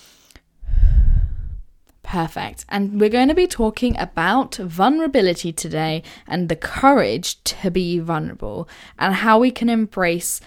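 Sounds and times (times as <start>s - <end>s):
deep breath in and out during a guided relaxation exercise: 0.0s - 1.7s
speech: 2.1s - 10.4s.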